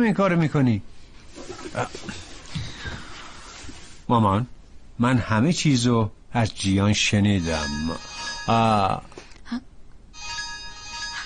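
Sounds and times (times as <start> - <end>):
speech: 0.0 - 1.0, 1.6 - 2.3, 4.1 - 9.7
phone ringing with a steady electronic ringtone: 7.4 - 9.2, 10.2 - 11.2.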